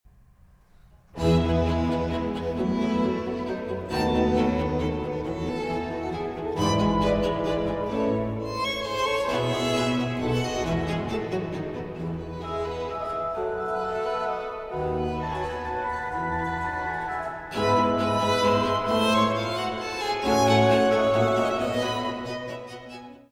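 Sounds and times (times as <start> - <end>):
two violins playing an allegro in F major: 1.2 - 23.3.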